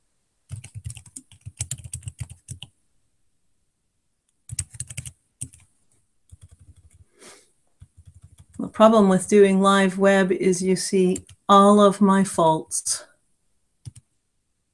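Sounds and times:
typing on a computer keyboard: 0.5s - 2.7s, 4.4s - 5.7s, 6.3s - 7.1s, 7.8s - 8.6s, 11.2s - 11.5s, 13.8s - 14.1s
speech: 8.8s - 13.1s.

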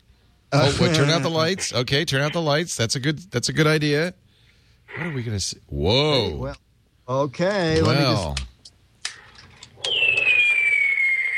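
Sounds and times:
speech: 0.5s - 4.2s, 4.9s - 8.5s
electronic warbling rising whistles from a toy fireworks projector: 9.8s - 11.3s.

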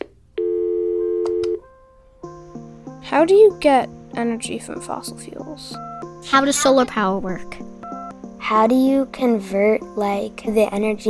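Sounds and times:
telephone tones as voicemail playback starts: 0.4s - 1.6s
speech: 3.1s - 7.7s, 8.4s - 11.0s.

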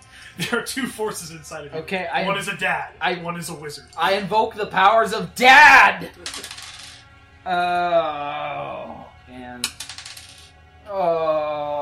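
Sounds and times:
speech: 0.4s - 6.5s, 7.4s - 9.8s, 10.9s - 11.8s
dice rolled onto a table: 6.2s - 7.0s, 9.6s - 10.5s.

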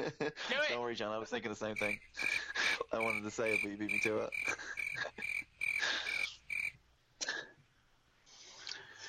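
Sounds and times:
speech: 0.0s - 5.3s
crickets chirping in pulsed high trills: 1.8s - 6.8s.

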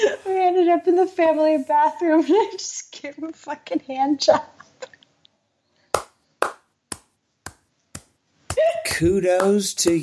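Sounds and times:
speech: 0.7s - 4.6s, 8.6s - 10.0s
person clapping slow single claps: 6.0s - 10.0s.

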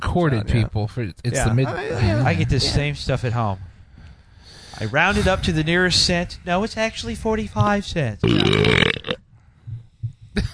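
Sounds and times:
speech: 0.2s - 3.7s, 4.8s - 8.8s
loud burp: 8.2s - 9.3s.

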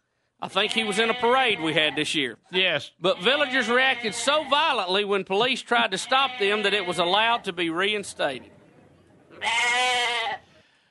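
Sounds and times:
speech: 0.4s - 8.6s, 9.4s - 10.4s
goat bleating: 0.6s - 2.1s, 3.1s - 4.8s, 5.8s - 7.4s, 9.4s - 10.5s.

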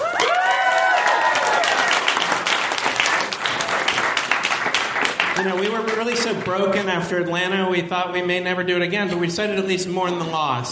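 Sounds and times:
live audience cheering and whooping: 0.0s - 2.5s
dense applause from a sizable live audience: 0.0s - 7.0s
speech: 5.4s - 10.7s.

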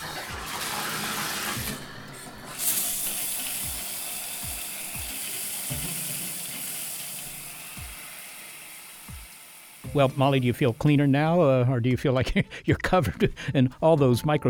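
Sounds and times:
shower head spraying water: 0.8s - 11.7s
speech: 10.0s - 14.4s.

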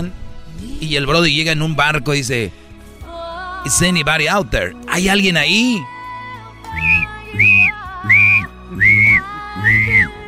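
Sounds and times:
speech: 0.0s - 2.6s, 3.6s - 5.9s
whistling: 6.7s - 10.2s.

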